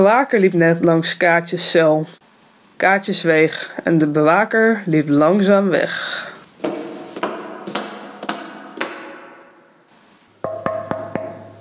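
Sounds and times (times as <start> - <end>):
speech: 0.0 - 2.2, 2.8 - 6.8
sharp metallic knocks on a metal pipe: 6.7 - 9.8, 10.4 - 11.5.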